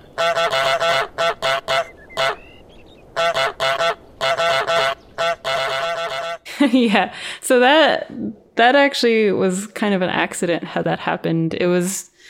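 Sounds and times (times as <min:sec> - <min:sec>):
video game goose honking: 0:00.2 - 0:02.6, 0:03.2 - 0:06.4
speech: 0:06.7 - 0:12.2.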